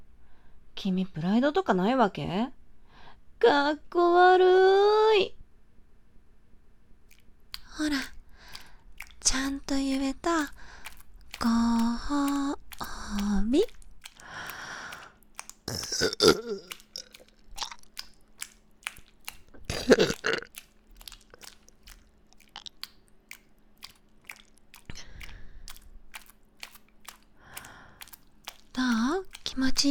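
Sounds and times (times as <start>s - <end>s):
quiet breathing: 0.1s - 0.7s, 2.7s - 3.3s, 7.6s - 15.3s, 24.9s - 26.1s, 27.1s - 29.2s
speech: 0.8s - 2.6s, 3.4s - 5.4s, 7.8s - 8.1s, 9.3s - 10.7s, 11.4s - 13.8s, 15.7s - 16.8s, 19.7s - 20.5s, 28.8s - 29.8s
wet mouth clicks: 7.1s - 29.8s
woman burping loudly: 15.7s - 17.2s, 19.6s - 20.5s.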